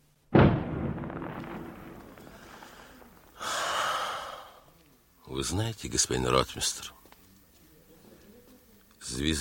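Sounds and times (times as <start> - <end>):
deep booming artillery shot fired from bastions: 0.3 - 3.4
speech: 5.4 - 7.0, 9.1 - 9.3.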